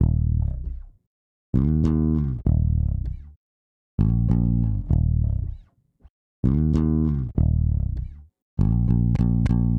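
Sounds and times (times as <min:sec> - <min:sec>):
hip hop electric bass line in E minor: 0:00.0 - 0:00.9, 0:01.6 - 0:03.4, 0:04.0 - 0:05.6, 0:06.4 - 0:09.7.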